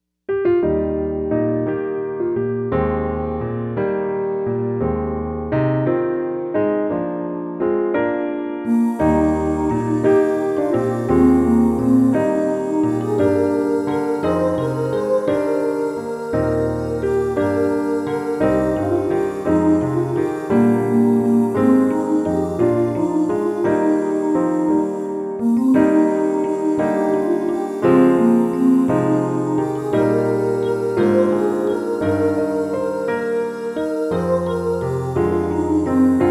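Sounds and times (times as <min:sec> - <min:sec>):
low piano study: 0:00.3 - 0:36.3.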